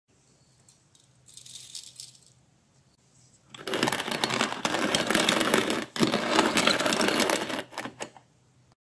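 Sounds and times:
coffee grinding: 0:03.5 - 0:08.2.

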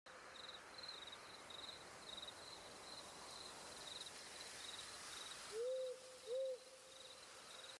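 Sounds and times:
birds at night: 0:00.1 - 0:07.7.

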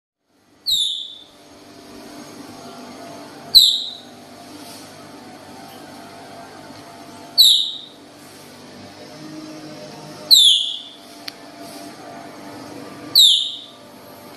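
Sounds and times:
soft hum: 0:00.2 - 0:14.3
Baird's tapir shrill downward-sliding whistles: 0:00.6 - 0:01.4, 0:03.5 - 0:04.1, 0:07.4 - 0:08.0, 0:10.3 - 0:11.0, 0:13.2 - 0:13.7.

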